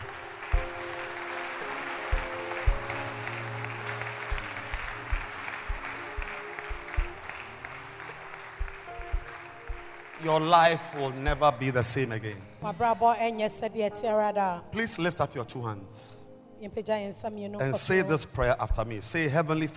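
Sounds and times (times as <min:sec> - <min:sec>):
congregation clapping rhythmically during a church service: 0:00.0 - 0:12.0
speech: 0:10.2 - 0:19.7.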